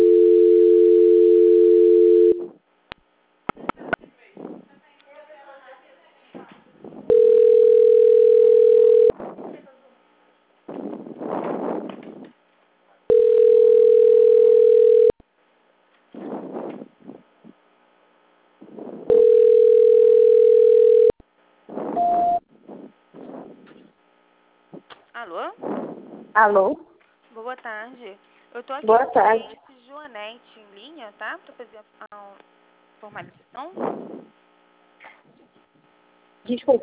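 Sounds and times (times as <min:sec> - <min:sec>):
mid-pitched telephone line tones during a call transfer: 0:00.0 - 0:02.5, 0:07.1 - 0:09.1, 0:13.1 - 0:15.1, 0:19.1 - 0:21.2, 0:22.0 - 0:22.4
speech: 0:26.4 - 0:26.8, 0:28.6 - 0:29.6, 0:31.1 - 0:34.4, 0:36.4 - 0:36.8.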